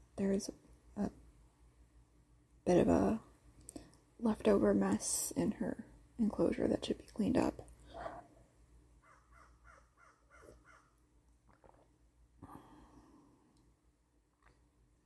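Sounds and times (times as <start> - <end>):
speech: 0.2 - 1.2, 2.7 - 3.2, 4.2 - 7.7
crow cawing outdoors: 9.0 - 11.0.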